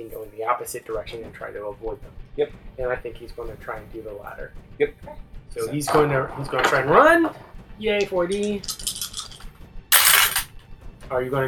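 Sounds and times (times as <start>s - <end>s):
speech: 0.0s - 8.9s, 11.1s - 11.4s
dice clattering on a tabletop: 8.0s - 10.5s.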